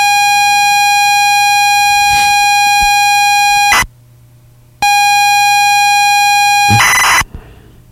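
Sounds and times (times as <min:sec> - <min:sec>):
computer data cassette loading whine: 0:00.0 - 0:03.9, 0:04.8 - 0:07.2.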